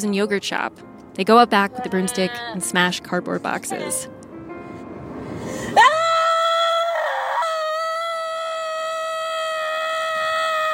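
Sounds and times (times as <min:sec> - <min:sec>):
speech: 0:00.0 - 0:04.2
person screaming while driving on highway: 0:05.8 - 0:10.7.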